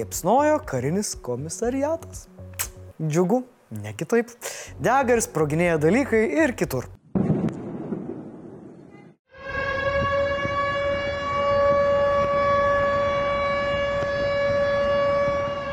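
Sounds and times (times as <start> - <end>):
speech: 0.0 - 7.0
air raid sirens wailing over the city of Belgorod Russia: 9.3 - 15.7.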